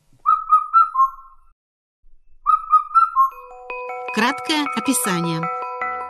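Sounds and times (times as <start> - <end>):
Indian cuckoo call: 0.2 - 1.4, 2.4 - 3.5
speech: 4.2 - 5.6.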